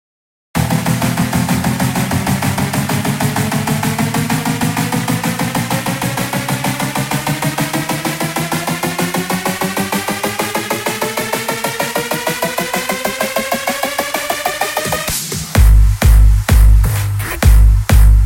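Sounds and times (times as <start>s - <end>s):
massive kick drum: 0.6s - 10.6s, 15.4s - 18.2s.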